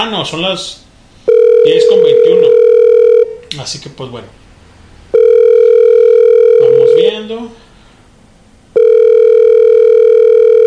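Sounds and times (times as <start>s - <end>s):
speech: 0.0s - 2.7s, 3.5s - 4.4s, 7.0s - 7.6s
phone line tone for an outgoing call: 1.3s - 3.4s, 5.1s - 7.1s, 8.8s - 10.6s.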